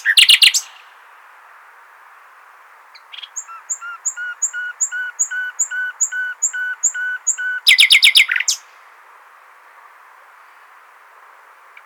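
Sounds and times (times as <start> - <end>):
common nightingale Luscinia megarhynchos singing two-part notes: 0.0 - 1.0, 2.9 - 8.8.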